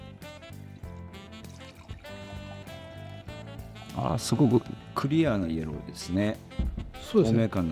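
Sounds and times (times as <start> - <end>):
white wine pouring into a glass: 0.8 - 5.1
speech: 4.0 - 7.7.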